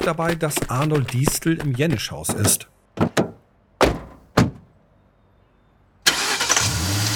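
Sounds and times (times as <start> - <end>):
speech: 0.0 - 3.2
sharp thuds: 0.0 - 4.8
car engine firing up and roaring as it pulls away: 6.0 - 7.1.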